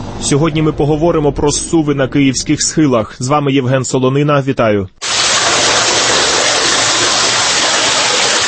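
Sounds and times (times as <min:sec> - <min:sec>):
speech: 0:00.3 - 0:05.1
water streams trickling and rushing through an underground drainage tunnel: 0:05.0 - 0:08.4.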